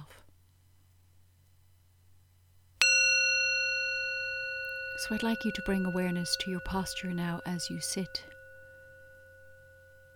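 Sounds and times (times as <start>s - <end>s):
meditation bell struck to begin a meditation: 2.8s - 10.1s
speech: 5.0s - 8.3s.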